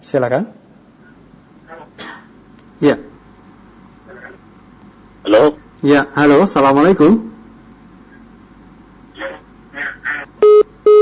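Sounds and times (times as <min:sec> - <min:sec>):
speech: 0:00.0 - 0:00.6, 0:02.8 - 0:03.0, 0:05.3 - 0:07.3
electronic disconnected call tone on a live radio call-in line: 0:09.2 - 0:10.9.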